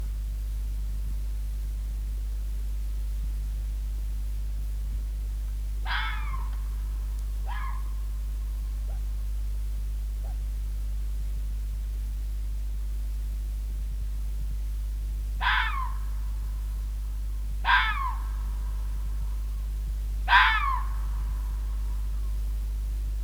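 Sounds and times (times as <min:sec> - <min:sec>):
steady low hum: 0:00.0 - 0:23.2
red fox screaming barks: 0:05.9 - 0:06.6, 0:07.4 - 0:08.0, 0:15.4 - 0:16.2, 0:17.6 - 0:18.4, 0:20.3 - 0:21.2.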